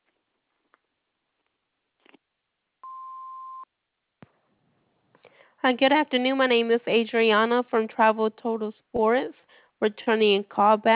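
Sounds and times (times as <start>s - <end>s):
answering machine beep: 2.8s - 3.6s
speech: 5.6s - 10.9s.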